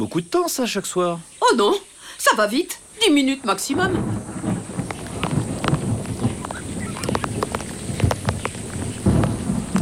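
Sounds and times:
speech: 0.0s - 4.7s
sharper rain drips: 0.0s - 9.7s
steady rain pattering: 0.0s - 9.7s
low continuous rumble of thunder: 3.1s - 9.7s.

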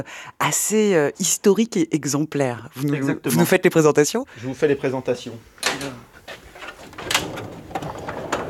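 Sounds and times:
speech: 0.0s - 6.0s
museum specimen drawer pulled open with scraping slides and knocks: 5.6s - 8.4s.

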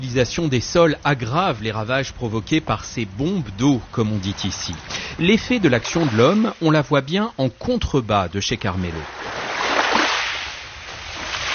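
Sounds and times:
speech: 0.0s - 9.4s
sea surf washing along a seaside promenade at Capo Orlando: 3.0s - 7.3s, 8.8s - 11.5s.

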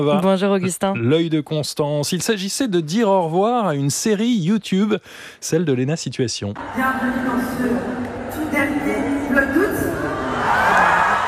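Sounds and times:
speech: 0.0s - 9.5s
packed arena crowd of about 20,000 people cheering and whooping: 9.8s - 11.2s.

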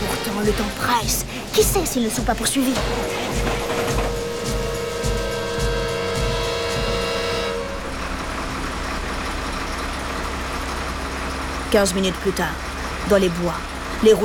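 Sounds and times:
droning whine: 0.0s - 14.2s
heavy overloaded truck engine labouring and sputtering: 0.0s - 14.2s
speech: 0.4s - 3.3s, 11.7s - 14.2s.

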